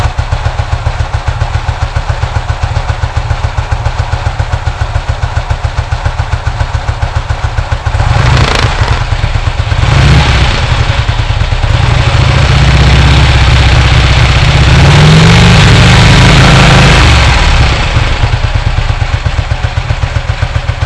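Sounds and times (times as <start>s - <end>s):
Rapide engine running: 0.0s - 20.8s.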